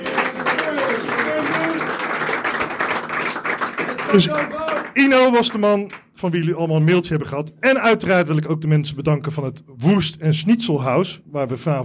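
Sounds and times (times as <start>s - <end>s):
audience applause: 0.0s - 6.0s
speech: 4.1s - 11.8s.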